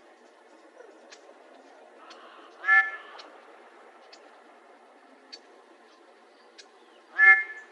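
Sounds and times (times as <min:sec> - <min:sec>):
low background hum: 0:00.0 - 0:07.7
faint clicks: 0:00.2 - 0:04.4
mallard quacks: 0:02.6 - 0:03.2, 0:07.1 - 0:07.6.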